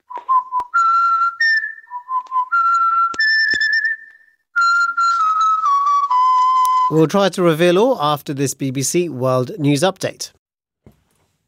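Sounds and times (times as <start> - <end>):
person whistling a lively tune: 0.0 - 7.0
speech: 6.9 - 10.4.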